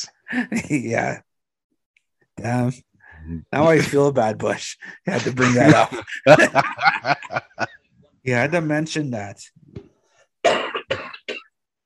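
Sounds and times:
speech: 0.0 - 1.3, 2.4 - 9.8
laughter: 0.3 - 1.2, 3.6 - 8.7
person coughing with a harsh chesty rasp: 5.2 - 6.7, 10.5 - 11.4.

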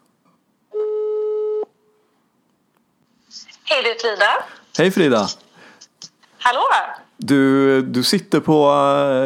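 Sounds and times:
ringback tone of an outgoing phone call: 0.7 - 1.7
speech: 3.4 - 5.4, 6.4 - 9.2.

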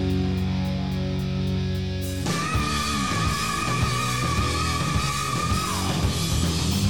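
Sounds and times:
dense distorted guitars in a heavy metal song: 0.0 - 6.8
long screamed vocal note in a heavy metal song: 2.3 - 6.4.

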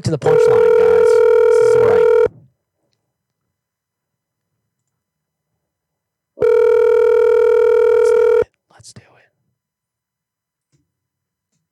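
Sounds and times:
speech: 0.0 - 0.8
telephone dial tone of an outgoing call: 0.3 - 2.3, 6.4 - 8.4.

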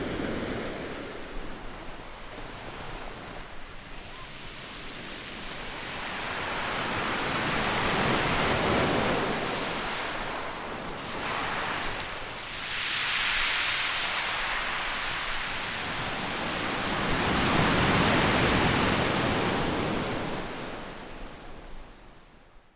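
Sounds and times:
ocean waves breaking on shore: 0.0 - 22.4.

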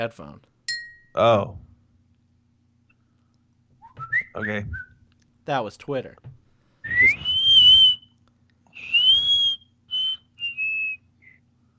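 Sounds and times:
speech: 0.0 - 0.6, 1.2 - 1.7, 4.4 - 4.9, 5.5 - 6.4
very high-pitched whistle: 6.8 - 11.4.

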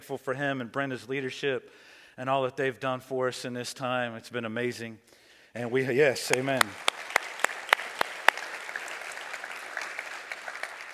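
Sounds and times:
speech: 0.1 - 7.1
audience clapping: 6.2 - 10.9.

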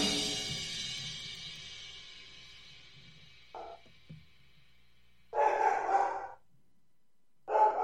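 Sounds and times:
dog barking: 3.6 - 3.9, 5.3 - 6.4, 7.5 - 7.8.

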